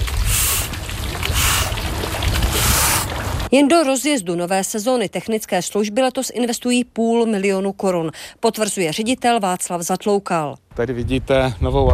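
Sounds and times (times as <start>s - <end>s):
water running in a swimming pool: 0.0s - 3.7s
speech: 3.5s - 11.9s.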